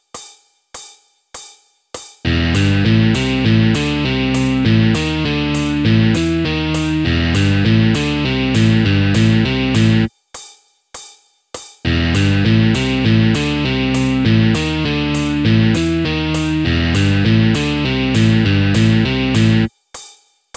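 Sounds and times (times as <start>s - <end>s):
musical motif: 2.3s - 10.1s, 11.9s - 19.7s.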